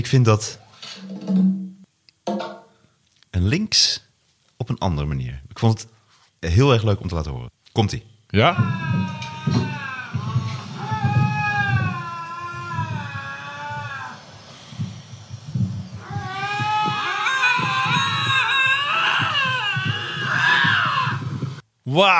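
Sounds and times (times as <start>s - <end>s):
speech: 0.0s - 0.6s, 3.4s - 4.0s, 4.6s - 9.8s, 22.0s - 22.1s
cats yowling and screeching in a fight: 8.4s - 21.6s.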